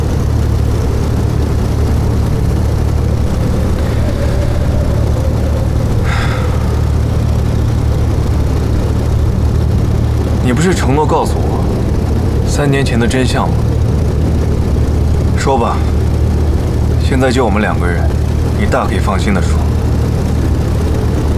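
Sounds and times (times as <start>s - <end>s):
airplane engine droning in flight: 0.0s - 21.3s
brief higher-pitched tone: 0.3s - 14.0s
speech: 10.6s - 11.5s, 12.6s - 13.7s, 15.4s - 16.0s, 17.1s - 19.7s.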